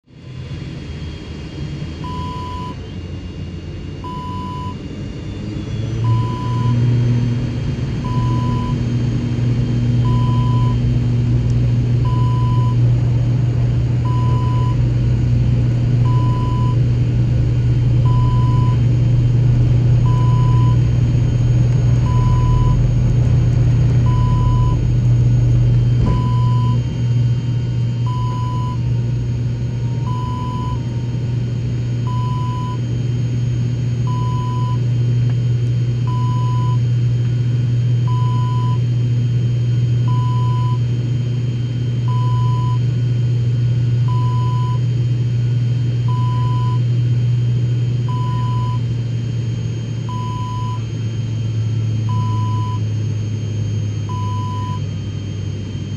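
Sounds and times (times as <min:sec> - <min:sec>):
airplane interior noise: 0:00.1 - 0:55.9.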